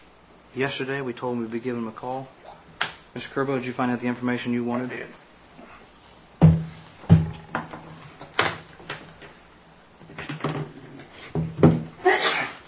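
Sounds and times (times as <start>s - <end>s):
speech: 0.5s - 2.4s, 3.1s - 5.2s
scattered thuds and clunks: 6.4s - 8.6s
person sneezing at a board meeting recess: 12.0s - 12.6s.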